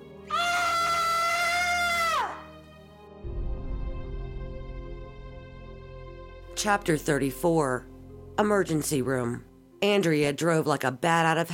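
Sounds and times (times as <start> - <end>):
loud shrill scream: 0.3 - 2.6
speech: 6.6 - 11.5.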